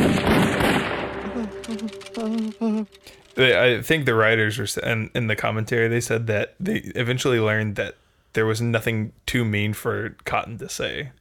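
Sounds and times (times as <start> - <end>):
rifle gunfire from a group: 0.0 - 1.4
speech: 1.7 - 11.1.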